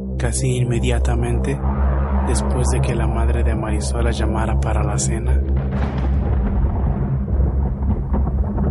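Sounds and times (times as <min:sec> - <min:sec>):
speech: 0:00.2 - 0:06.2
loud thunder clap breaking into a deep rumble: 0:01.0 - 0:08.7.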